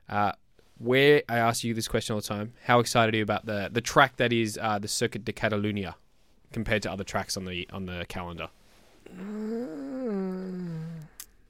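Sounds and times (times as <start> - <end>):
speech: 0.1 - 9.4
person giving a weird drawn-out vocal groan: 9.0 - 11.3.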